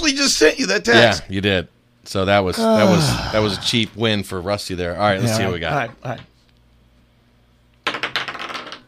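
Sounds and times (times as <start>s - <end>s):
speech: 0.0s - 6.3s
heavy dice rolling and clattering behind a computer: 7.8s - 8.8s.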